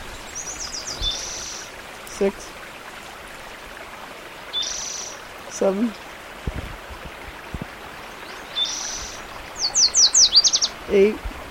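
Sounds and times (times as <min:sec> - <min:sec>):
steady wind noise: 0:00.0 - 0:01.5, 0:06.3 - 0:08.2, 0:10.7 - 0:11.4
warbler song with high-pitched trill and chirps: 0:00.0 - 0:01.7, 0:04.5 - 0:05.2, 0:08.0 - 0:10.9
speech: 0:02.2 - 0:02.6, 0:05.6 - 0:06.0, 0:10.9 - 0:11.3.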